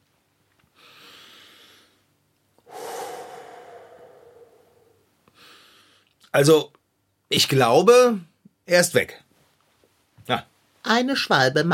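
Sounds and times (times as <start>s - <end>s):
deep breathing to cure hiccups: 0.8s - 6.1s
speech: 6.3s - 9.2s, 10.2s - 11.7s.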